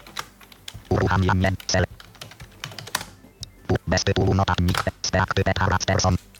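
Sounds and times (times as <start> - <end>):
typing on an eight-dot braille keyboard: 0.0 - 3.2
speech: 1.1 - 1.9, 3.9 - 6.3.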